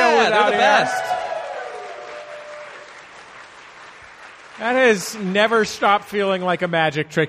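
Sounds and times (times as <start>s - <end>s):
audience at a live show cheering and whooping: 0.0s - 3.1s
audience at a live show clapping: 0.0s - 6.7s
speech: 0.3s - 1.1s, 4.6s - 7.2s.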